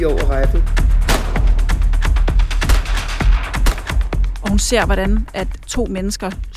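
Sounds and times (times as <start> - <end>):
speech: 0.0 - 1.0, 4.6 - 6.5
rapid burst of gunshots: 1.0 - 1.8, 2.6 - 4.0.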